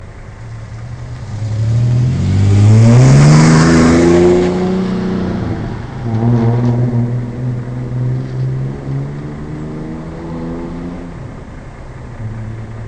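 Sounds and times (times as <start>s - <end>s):
Ranger with Flowmaster Magna Cat exhaust at medium throttle: 0.0s - 12.8s.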